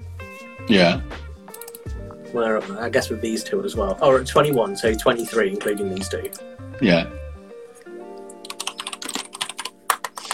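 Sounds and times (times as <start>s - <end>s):
speech: 0.7s - 1.2s, 2.3s - 7.2s
typing on a computer keyboard: 1.5s - 1.9s, 8.3s - 10.3s.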